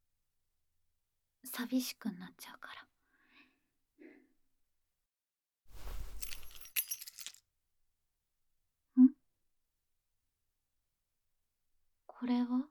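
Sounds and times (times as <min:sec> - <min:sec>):
speech: 0:01.4 - 0:02.9, 0:12.2 - 0:12.6
handling rustle: 0:05.8 - 0:07.4
metal spare key jingling as it is handed over: 0:05.8 - 0:07.4.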